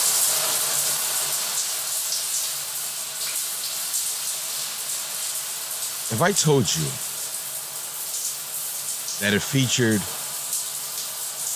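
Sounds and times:
running shower water spraying: 0.0 - 11.5
speech: 6.1 - 7.1, 9.2 - 10.2.

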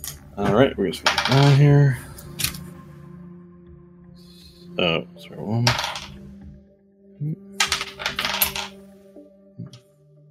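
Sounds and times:
speech: 0.4 - 2.1, 4.8 - 5.9
dice clattering as a hand rummages through a bowl of dice: 1.1 - 1.6, 5.7 - 6.1, 7.6 - 8.7.

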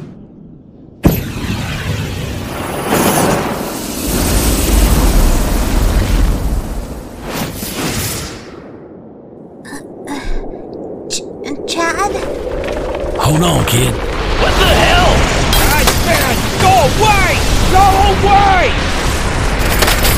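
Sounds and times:
roaring fire blast engulfing a book thrown into the air: 1.0 - 9.2, 12.3 - 20.0.

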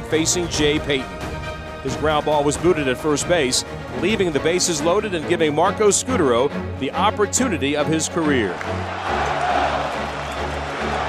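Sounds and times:
speech: 0.1 - 9.3
large baseball stadium crowd chanting a player's name: 8.8 - 11.0.

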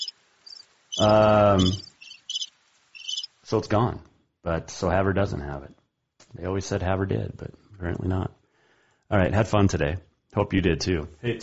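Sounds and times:
crickets chirping: 0.0 - 3.4
speech: 1.0 - 1.9, 3.5 - 8.4, 9.1 - 11.4.

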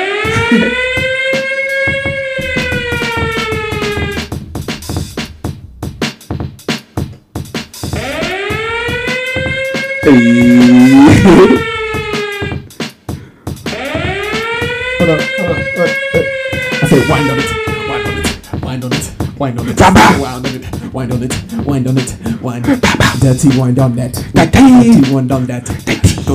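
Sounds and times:
shrill electronic fire alarm blaring: 0.0 - 5.1, 7.9 - 12.7, 13.7 - 18.6, 19.8 - 20.2
speech: 0.5 - 0.9, 10.0 - 11.7, 19.4 - 20.4, 21.2 - 22.2, 23.4 - 26.3.

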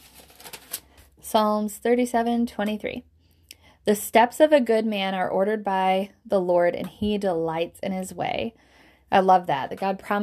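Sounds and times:
thin Bible pages being flipped: 0.0 - 1.1
speech: 1.3 - 3.1, 3.9 - 10.2.

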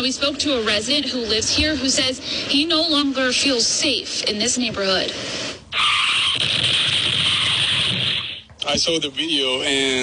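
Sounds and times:
speech: 0.0 - 6.8, 8.7 - 10.0
car tires screeching in a long skid: 5.7 - 8.4.

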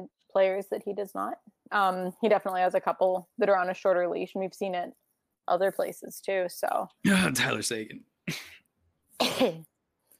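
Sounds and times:
speech: 0.0 - 8.5, 9.2 - 9.7
harsh breathy cough: 7.1 - 7.6, 9.2 - 9.7.

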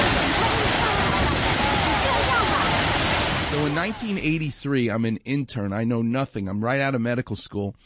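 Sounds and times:
Niagara Falls waterfall roaring: 0.0 - 4.5
speech: 3.8 - 7.8.

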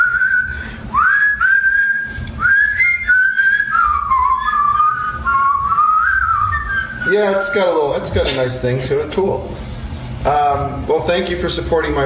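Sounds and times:
person whistling a tune: 0.0 - 7.8
speech: 7.1 - 12.0.

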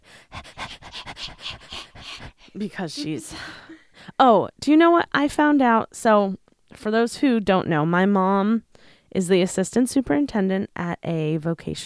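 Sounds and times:
person imitating a dog panting into a microphone: 0.0 - 3.7
speech: 2.6 - 11.8.

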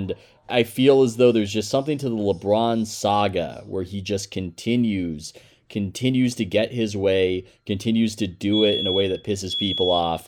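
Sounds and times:
speech: 0.0 - 10.2
thin steady high-pitched alarm tone: 8.5 - 10.2.

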